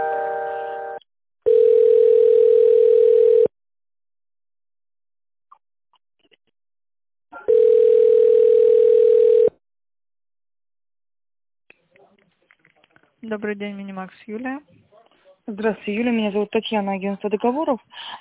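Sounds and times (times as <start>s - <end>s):
telephone line tone while a call is transferred: 0.0s - 3.5s, 7.4s - 9.6s
speech: 13.3s - 14.8s, 15.5s - 18.1s.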